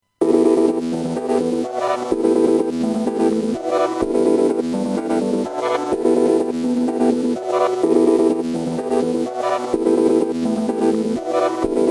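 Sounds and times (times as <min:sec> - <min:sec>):
synth loop: 0:00.2 - 0:11.9.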